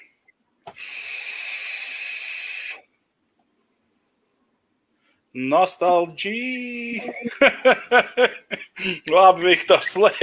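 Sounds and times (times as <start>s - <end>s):
person exhaling a cloud of vape vapor: 0.7s - 2.8s
speech: 5.4s - 10.2s
laughter: 7.0s - 9.1s, 9.8s - 10.2s.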